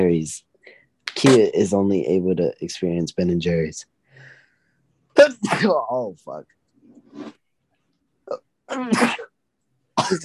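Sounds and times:
speech: 0.0 - 0.5, 1.2 - 3.9, 5.2 - 7.4, 8.3 - 9.3, 10.1 - 10.2
loud sneeze: 8.7 - 9.3.

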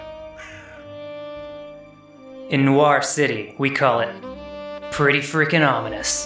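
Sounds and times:
crow cawing: 0.3 - 1.0
speech: 2.5 - 4.4, 5.0 - 6.2.

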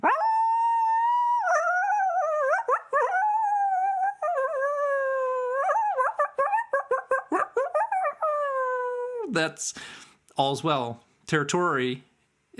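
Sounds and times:
coyotes howling: 0.0 - 9.3
speech: 9.3 - 12.5.

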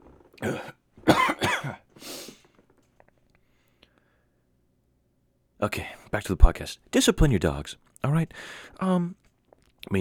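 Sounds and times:
speech: 0.4 - 0.8, 5.6 - 9.2
person coughing after inhaling water while drinking: 0.4 - 1.9.

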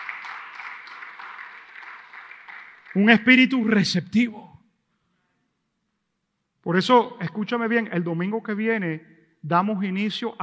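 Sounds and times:
audience applauding: 0.0 - 3.6
speech: 2.9 - 4.5, 6.7 - 10.4.

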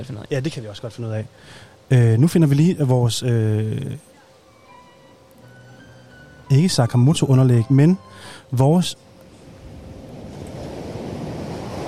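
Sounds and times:
speech: 0.0 - 4.1, 6.5 - 9.1
ocean waves breaking on a shore at eastern Skagen Denmark in the morning: 9.3 - 11.8
wind noise: 9.3 - 11.8.

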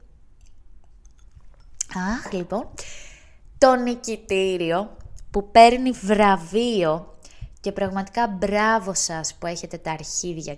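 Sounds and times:
person sipping and swallowing wine: 0.1 - 2.9
speech: 2.0 - 3.0, 3.6 - 10.5.

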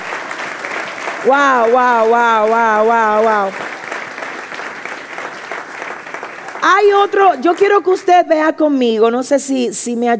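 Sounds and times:
audience applauding: 0.0 - 8.1
speech: 1.2 - 3.8, 6.6 - 10.1.

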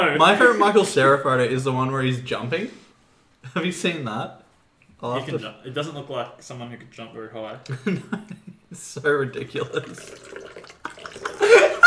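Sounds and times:
speech: 0.1 - 2.8, 3.5 - 4.4, 5.0 - 11.8
stream of liquid pouring and splashing into water: 9.5 - 11.8
faint laugh: 11.3 - 11.8.

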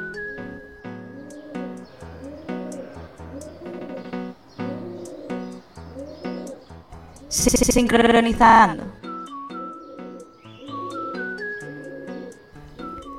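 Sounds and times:
pigeon cooing: 0.0 - 7.5, 9.0 - 13.1
speech: 7.3 - 8.9.

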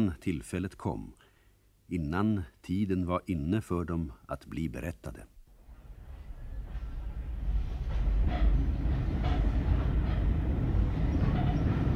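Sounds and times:
speech: 0.0 - 1.2, 1.9 - 5.3
northbound passenger train departing station: 5.6 - 11.9
rhythmic rail clacks of a departing passenger train: 5.8 - 11.9.

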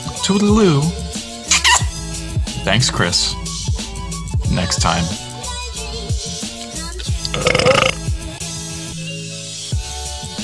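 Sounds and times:
music: 0.0 - 10.4
speech: 0.2 - 1.0, 2.6 - 3.4, 4.5 - 5.2
burp: 7.0 - 8.0.

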